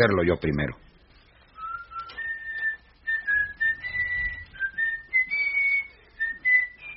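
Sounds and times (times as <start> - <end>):
speech: 0.0 - 0.8
person whistling a sweet gentle melody: 1.6 - 6.9.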